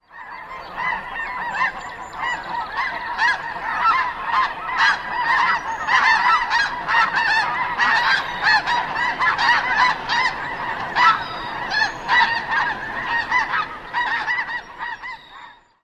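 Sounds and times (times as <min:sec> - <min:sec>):
large flock of snow geese flying over: 0:00.0 - 0:15.8.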